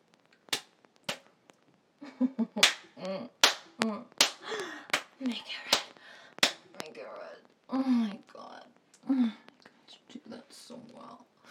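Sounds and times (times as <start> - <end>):
hand slapping bare buttocks: 0.5 - 1.3, 2.6 - 5.1, 5.7 - 6.6
speech: 2.2 - 4.1.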